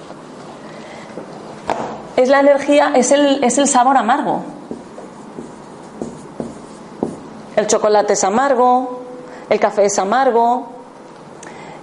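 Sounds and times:
hiss: 0.0s - 9.7s
speech: 2.2s - 4.5s, 7.6s - 10.7s
eraser rubbing writing off a board: 4.6s - 7.4s.

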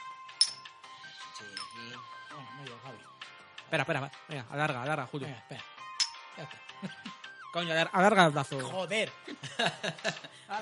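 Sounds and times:
glasses clinking in a toast: 0.4s - 0.8s, 1.5s - 1.8s, 6.0s - 6.4s
speech: 1.4s - 5.8s, 6.4s - 10.6s
laughter: 6.4s - 7.2s, 8.6s - 10.6s.

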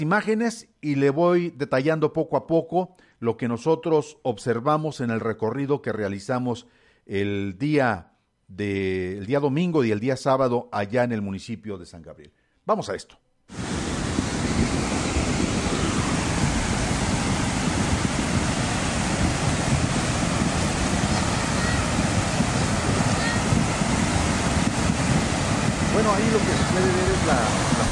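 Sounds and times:
speech: 0.0s - 13.6s
rushing water of a suddenly swollen overflowing river in San Gabriel: 13.5s - 27.8s.

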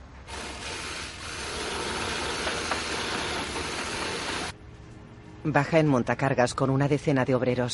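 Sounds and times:
construction worker's power drill drilling into a wall of a building under construction: 0.3s - 4.5s
speech: 5.4s - 7.7s.

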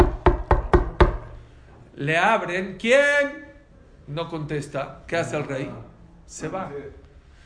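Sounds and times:
firm knocking on a door: 0.0s - 1.4s
speech: 2.0s - 3.5s, 4.1s - 7.0s.

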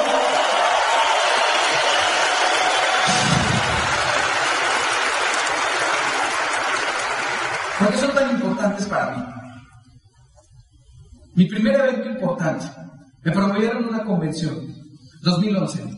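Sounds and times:
large audience applause: 0.0s - 8.5s
speech: 7.9s - 9.3s, 11.4s - 15.9s.

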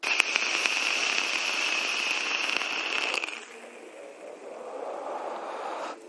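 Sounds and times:
vape coil with wide 810 drip tip sizzling and crackling: 0.0s - 6.0s
breathy rush of air as vapor is exhaled: 3.9s - 6.0s.

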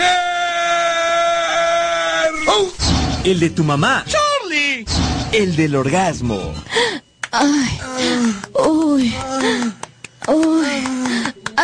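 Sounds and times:
cartoonish strained bleating scream: 0.0s - 2.8s
speech: 2.6s - 4.2s, 4.8s - 11.2s.

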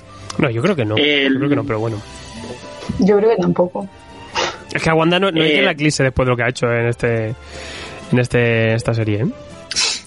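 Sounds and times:
speech: 0.4s - 4.1s, 4.7s - 9.9s
sneeze: 4.4s - 4.6s, 9.7s - 10.0s.

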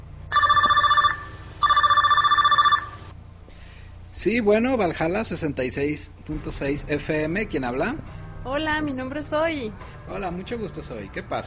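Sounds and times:
telephone ringing with an incoming call in bright electronic bursts: 0.3s - 3.1s
speech: 4.2s - 11.4s.

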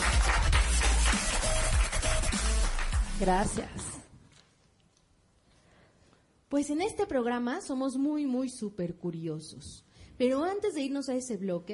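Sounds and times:
audience clapping in the children's room of a library: 0.0s - 3.7s
speech: 3.2s - 3.8s, 6.5s - 11.7s.

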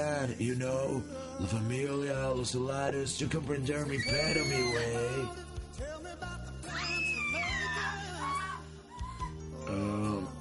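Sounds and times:
speech: 0.0s - 6.3s
shrill high-pitched scream: 4.0s - 5.3s, 6.6s - 9.4s.

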